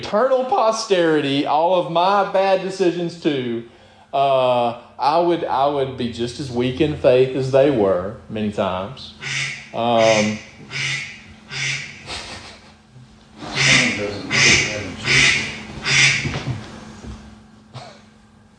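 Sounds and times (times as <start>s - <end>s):
speech: 0.1s - 11.0s
loud raspy duck quacks: 9.2s - 12.6s, 13.4s - 16.4s.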